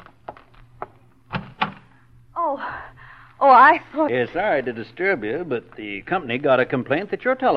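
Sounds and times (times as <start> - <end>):
front door being unlatched and opened: 1.3 - 1.9
speech: 3.4 - 7.5.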